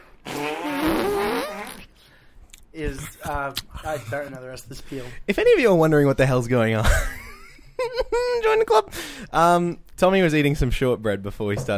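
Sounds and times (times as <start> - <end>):
wobbling buzzy fart sound: 0.2 - 1.9
speech: 2.8 - 7.2, 8.1 - 11.7.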